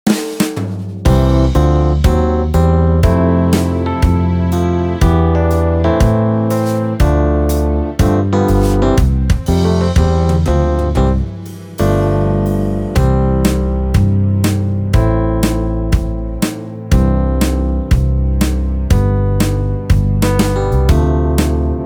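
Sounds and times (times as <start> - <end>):
instrumental music: 0.0 - 21.8.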